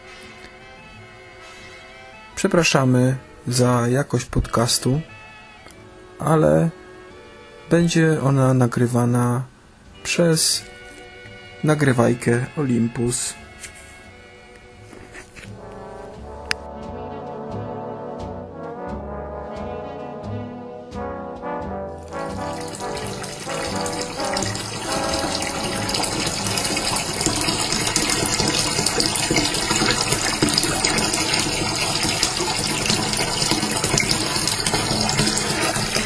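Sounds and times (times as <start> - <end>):
speech: 2.4 - 5.1, 6.2 - 6.8, 7.7 - 10.8, 11.6 - 13.5
bathtub tap water gurgling: 22.1 - 36.0.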